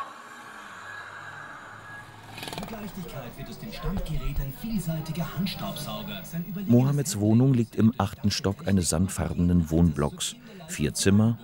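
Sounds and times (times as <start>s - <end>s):
car engine rumbling as it rolls to a stop: 1.8s - 6.9s
speech: 2.7s - 11.4s.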